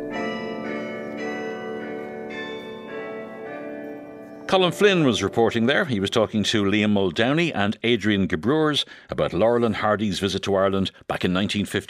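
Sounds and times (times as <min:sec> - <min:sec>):
old church bells in Ireland ringing a peal: 0:00.0 - 0:07.5
speech: 0:04.5 - 0:11.8.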